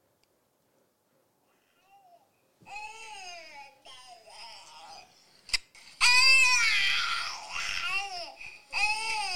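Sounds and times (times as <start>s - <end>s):
baby girl shrieking and babbling: 1.5s - 5.1s, 6.0s - 9.3s.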